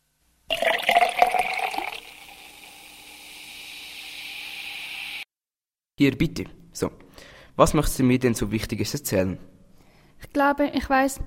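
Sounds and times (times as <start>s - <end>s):
water poured briskly into a glass, splashing and gurgling: 0.5s - 5.2s
speech: 6.0s - 9.5s, 10.2s - 11.2s.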